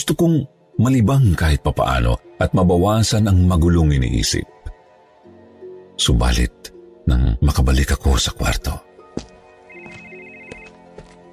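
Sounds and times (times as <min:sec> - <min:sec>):
speech: 0:00.0 - 0:04.6, 0:06.0 - 0:09.3
cellphone ringtone playing an electronic melody for an incoming call: 0:09.6 - 0:10.9.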